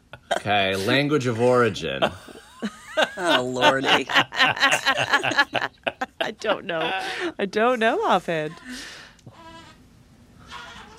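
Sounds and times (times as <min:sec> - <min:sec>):
laughter: 0:00.3 - 0:07.3
speech: 0:00.4 - 0:02.4, 0:03.2 - 0:09.0
baby bleating like a billy goat: 0:09.3 - 0:09.8.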